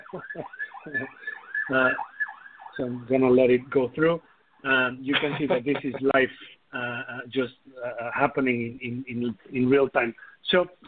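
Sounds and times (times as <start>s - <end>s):
laughter: 0.0s - 1.3s, 4.9s - 7.0s
passing ambulance siren wailing: 0.0s - 4.3s
speech: 0.1s - 2.1s, 2.8s - 10.8s.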